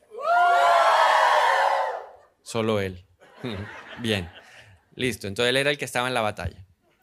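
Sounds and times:
church audience shouting loudly during a morning service: 0.1 - 2.2
speech: 2.5 - 4.4, 5.0 - 6.7
laughter: 3.2 - 4.7.

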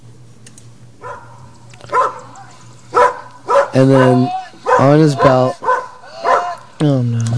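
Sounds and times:
low electrical hum: 0.0 - 7.3
big dog barking: 1.0 - 2.3, 2.9 - 6.6
speech: 3.7 - 5.6, 6.8 - 7.3.

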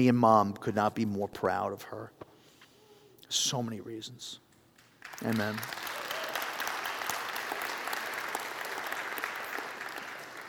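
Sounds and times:
speech: 0.0 - 2.3, 3.3 - 4.4, 5.1 - 5.9
audience applauding: 4.8 - 10.4.

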